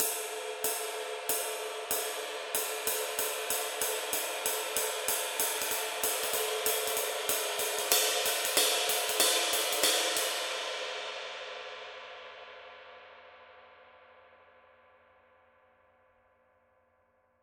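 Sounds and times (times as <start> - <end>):
dark ride cymbal: 0.0 - 12.0.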